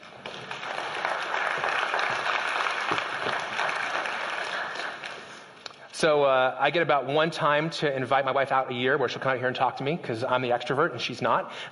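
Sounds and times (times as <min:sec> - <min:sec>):
crowd applauding: 0:00.0 - 0:05.6
speech: 0:06.0 - 0:11.7.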